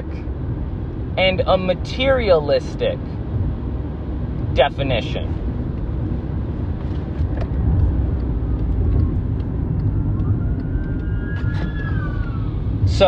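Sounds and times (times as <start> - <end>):
fire truck heavy engine roar: 0.0 - 13.0
speech: 1.2 - 3.1, 4.6 - 5.4, 12.9 - 13.0
fire truck siren wailing: 9.9 - 13.0.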